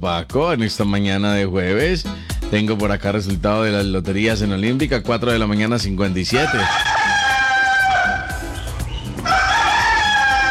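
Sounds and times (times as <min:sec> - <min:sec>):
speech: 0:00.0 - 0:06.9
rooster crowing: 0:06.3 - 0:10.4.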